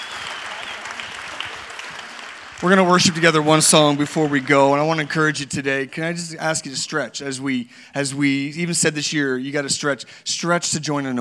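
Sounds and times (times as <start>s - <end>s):
audience applause: 0.0s - 5.5s
speech: 2.6s - 11.1s.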